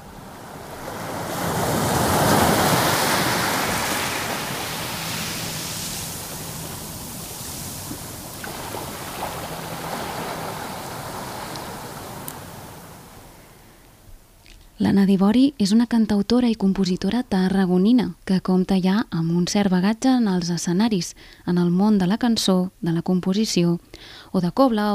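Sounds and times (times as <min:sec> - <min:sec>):
wind rumble: 0:00.0 - 0:13.4
ocean surf washing onto a beach: 0:00.0 - 0:13.8
speech: 0:14.9 - 0:24.9.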